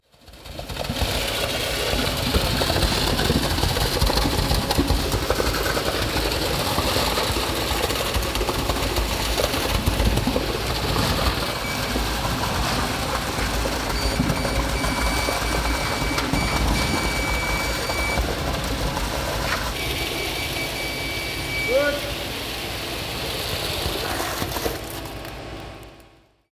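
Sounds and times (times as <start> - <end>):
concrete being poured: 0.1 - 26.1.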